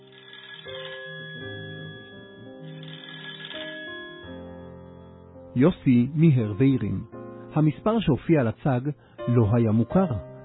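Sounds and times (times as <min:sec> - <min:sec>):
home telephone ringing with a melodic electronic ringtone: 0:00.0 - 0:05.4
speech: 0:05.6 - 0:10.3.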